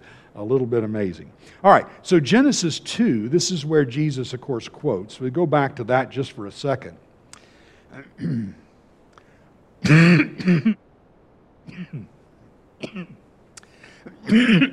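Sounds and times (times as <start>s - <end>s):
speech: 0.4s - 7.0s, 7.9s - 8.6s, 9.8s - 10.8s, 11.7s - 12.2s, 12.8s - 13.2s, 14.0s - 14.7s
person clearing throat: 7.9s - 8.7s, 9.8s - 10.8s, 11.7s - 12.1s, 12.8s - 13.2s, 14.0s - 14.7s
person coughing: 7.9s - 8.7s, 9.8s - 10.8s, 11.7s - 12.1s, 12.8s - 13.2s, 14.0s - 14.7s.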